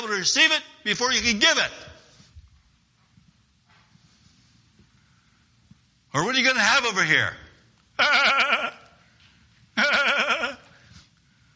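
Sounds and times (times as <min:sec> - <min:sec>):
speech: 0:00.1 - 0:01.9, 0:06.1 - 0:07.4, 0:08.0 - 0:08.8
sheep bleating: 0:08.0 - 0:09.0, 0:09.8 - 0:10.7.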